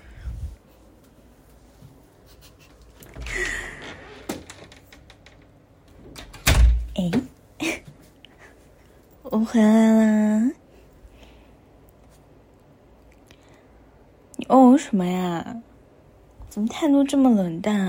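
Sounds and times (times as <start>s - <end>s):
door opening and closing to collect delivered medicine: 3.0s - 7.3s
door latch clicking and rattling: 4.2s - 6.9s
speech: 7.0s - 7.2s, 9.3s - 10.6s, 14.8s - 15.6s, 16.5s - 17.8s.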